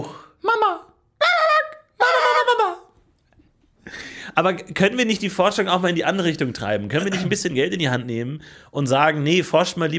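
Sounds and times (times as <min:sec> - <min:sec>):
person imitating a high chick-like dinosaur call: 0:00.6 - 0:02.9
speech: 0:04.4 - 0:09.9.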